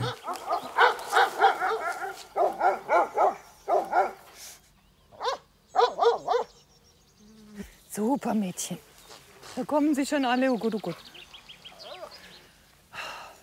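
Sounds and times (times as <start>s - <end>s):
livestock guardian dogs barking in Germany: 0.0s - 4.3s, 5.1s - 6.6s
speech: 8.2s - 8.9s, 9.6s - 11.1s.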